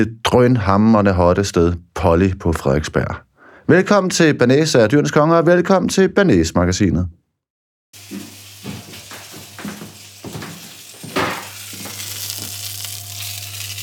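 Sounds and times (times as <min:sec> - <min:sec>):
speech: 0:00.0 - 0:07.2, 0:07.9 - 0:08.4
ginger frankfurter sausage frying in a pan: 0:08.0 - 0:13.8.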